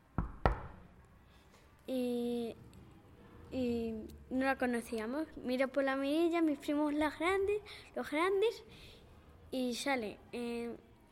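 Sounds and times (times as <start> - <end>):
knocking on a door: 0.2 - 0.8
speech: 1.9 - 2.6, 3.5 - 11.1.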